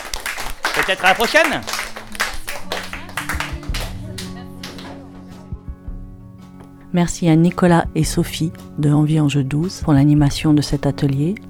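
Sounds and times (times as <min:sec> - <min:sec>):
group of people applauding: 0:00.0 - 0:05.4
speech: 0:00.8 - 0:01.8, 0:06.9 - 0:11.4.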